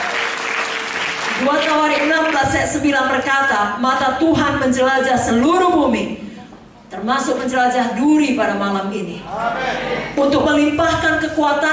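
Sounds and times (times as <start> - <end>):
audience applauding: 0.0 - 2.4
speech: 1.4 - 6.2, 6.9 - 11.7.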